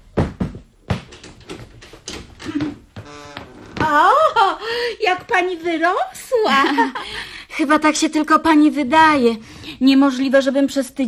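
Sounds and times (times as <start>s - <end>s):
door being opened from inside: 0.9s - 4.0s
speech: 5.0s - 11.0s.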